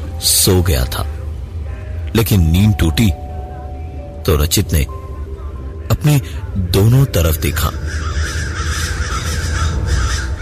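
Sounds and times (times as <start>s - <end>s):
steady low rumble: 0.0s - 10.4s
speech: 0.2s - 1.1s, 2.1s - 3.2s, 4.2s - 5.0s, 6.0s - 8.1s
crows cawing over a sugarcane field: 7.6s - 10.4s.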